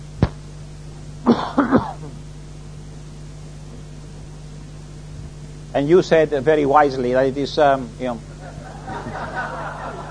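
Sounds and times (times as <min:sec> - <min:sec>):
faint steady hum: 0:00.0 - 0:10.0
man coughing: 0:01.2 - 0:02.2
speech: 0:01.3 - 0:01.9, 0:05.8 - 0:08.3
laughter: 0:08.3 - 0:10.0.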